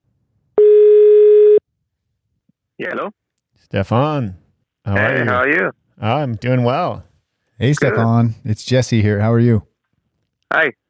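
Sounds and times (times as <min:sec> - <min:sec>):
outgoing call telephone ringing tone: 0:00.6 - 0:01.6
speech: 0:02.8 - 0:09.7, 0:10.5 - 0:10.8.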